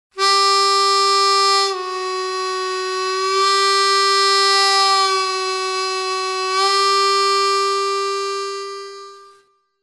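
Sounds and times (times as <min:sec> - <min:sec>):
harmonica note bend: 0:00.2 - 0:09.6.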